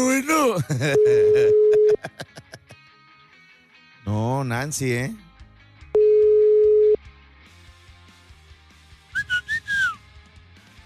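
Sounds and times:
speech: 0:00.2 - 0:02.3, 0:04.1 - 0:05.3
laughter: 0:00.6 - 0:02.8
telephone tone after a dropped call: 0:01.0 - 0:02.0, 0:06.0 - 0:07.0.

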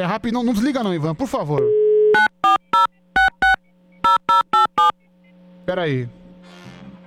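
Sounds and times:
speech: 0:00.0 - 0:02.3, 0:05.7 - 0:06.2
telephone keypad dialing tones: 0:02.2 - 0:04.9.

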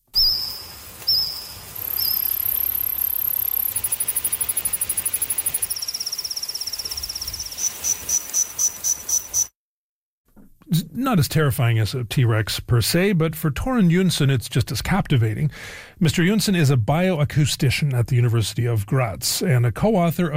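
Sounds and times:
recreated Jurassic-era insect calls with cricket-like chirps and pulse trains: 0:00.1 - 0:09.5
speech: 0:11.0 - 0:20.3.

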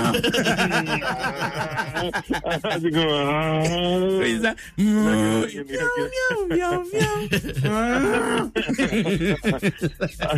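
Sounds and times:
laughter: 0:00.0 - 0:10.3
playful vocal noises: 0:00.0 - 0:10.3
speech: 0:00.1 - 0:10.3
person imitating a crying cow's moo: 0:04.8 - 0:05.6, 0:07.7 - 0:08.6.

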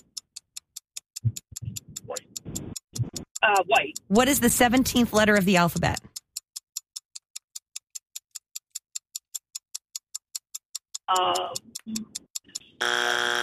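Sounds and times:
quiz game timer ticking: 0:00.0 - 0:13.4
speech: 0:03.4 - 0:06.1, 0:11.1 - 0:12.2
quiz game buzzer blaring: 0:12.8 - 0:13.4.

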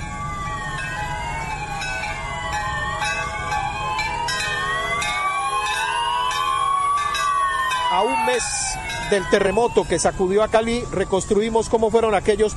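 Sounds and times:
several sirens wailing: 0:00.0 - 0:12.5
church bells ringing: 0:00.8 - 0:09.5
speech: 0:08.0 - 0:12.5.

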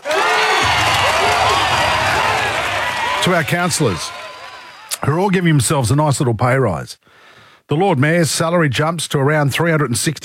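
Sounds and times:
crowd applause: 0:00.0 - 0:05.1
speech: 0:03.2 - 0:04.2, 0:05.0 - 0:10.2.

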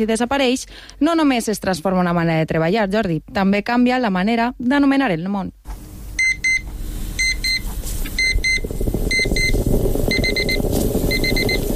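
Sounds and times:
speech: 0:00.0 - 0:05.8
low rumbling background: 0:05.7 - 0:11.7
alarm clock beeping: 0:06.2 - 0:11.7.

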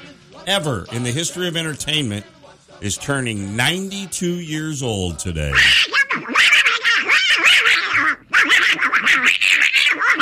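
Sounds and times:
speech: 0:00.4 - 0:06.0
raspy cartoon duck character voice quacking: 0:05.2 - 0:10.2.

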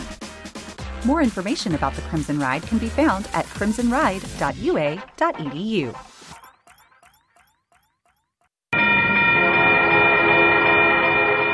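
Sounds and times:
speech: 0:01.0 - 0:06.1
railroad crossing bell dinging: 0:08.8 - 0:11.5.

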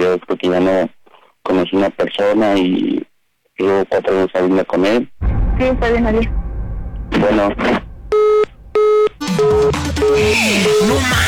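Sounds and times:
speech: 0:00.1 - 0:06.4, 0:07.1 - 0:08.4, 0:09.2 - 0:11.2
burst of mixed noisy sound: 0:05.2 - 0:11.2
telephone hang-up tone beeps: 0:08.2 - 0:11.0.

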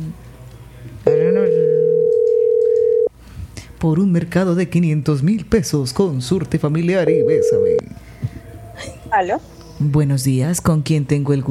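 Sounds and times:
speech: 0:00.0 - 0:00.3, 0:03.8 - 0:08.0, 0:08.8 - 0:11.4
telephone line tone while a call is being placed: 0:01.1 - 0:03.1, 0:07.0 - 0:07.8.

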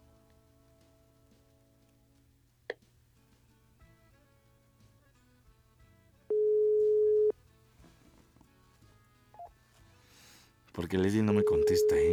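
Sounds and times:
telephone ringing tone before voicemail: 0:06.3 - 0:07.3, 0:11.4 - 0:12.1
speech: 0:10.9 - 0:12.1.

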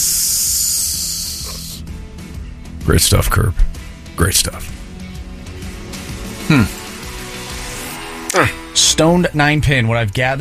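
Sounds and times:
hissing spray from a nozzle: 0:00.0 - 0:01.8
speech: 0:02.9 - 0:04.8, 0:06.5 - 0:06.8, 0:08.4 - 0:10.3.

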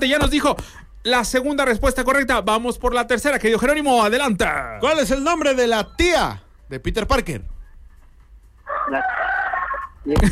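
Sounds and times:
speech: 0:00.0 - 0:07.5, 0:08.9 - 0:09.2, 0:10.0 - 0:10.3
rooster crowing: 0:08.7 - 0:10.0.

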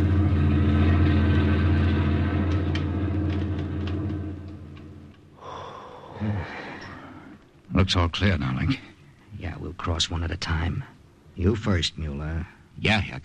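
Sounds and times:
heavy army lorry engine rumbling past: 0:00.0 - 0:05.3
speech: 0:07.8 - 0:13.2.

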